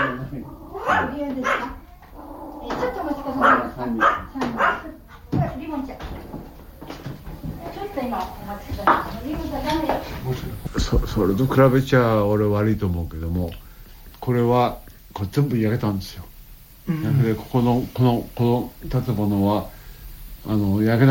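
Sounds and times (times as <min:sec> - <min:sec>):
dog barking: 0:00.0 - 0:05.6
speech: 0:00.3 - 0:01.8, 0:03.8 - 0:04.2, 0:08.2 - 0:13.6, 0:14.3 - 0:16.3, 0:16.9 - 0:19.8, 0:20.4 - 0:21.0.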